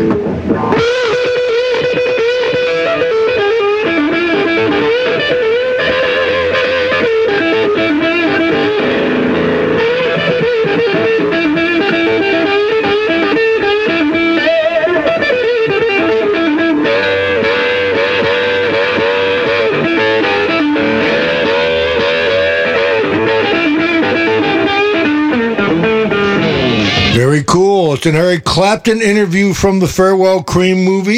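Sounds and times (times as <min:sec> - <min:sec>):
loud heavily distorted electric guitar with sustained notes and bends: 0:00.0 - 0:31.1
speech: 0:28.0 - 0:31.1.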